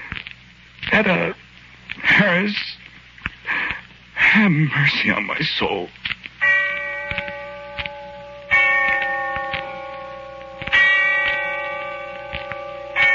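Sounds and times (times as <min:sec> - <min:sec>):
speech: 0:00.9 - 0:01.4, 0:02.0 - 0:02.8, 0:04.4 - 0:06.0
distant church bell tolling: 0:06.4 - 0:13.1.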